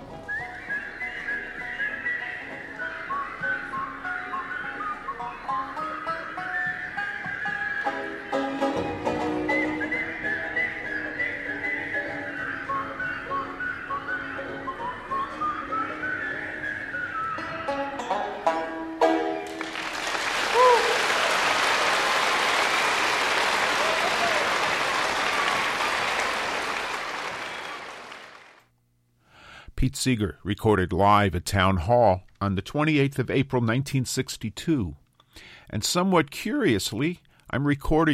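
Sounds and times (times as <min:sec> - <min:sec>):
concert audience whistling along to song: 0:00.0 - 0:17.8, 0:20.1 - 0:28.6
accompanying music: 0:00.0 - 0:27.7
speech: 0:29.8 - 0:38.1.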